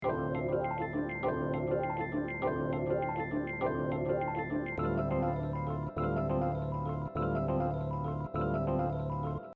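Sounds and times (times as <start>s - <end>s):
Rhodes electric piano loop: 0.0s - 9.5s.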